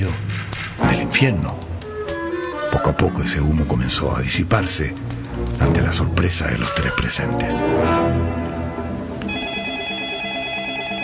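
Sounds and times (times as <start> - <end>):
dense musical bed: 0.0 - 11.0
speech: 1.2 - 1.6, 2.7 - 8.5
telephone ringing in a smoke-filled living room: 9.2 - 11.0.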